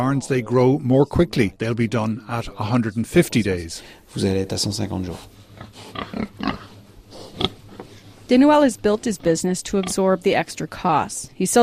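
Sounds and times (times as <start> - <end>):
speech: 0.0 - 6.6, 8.3 - 11.6
pigs grunting on a farm: 5.1 - 8.0.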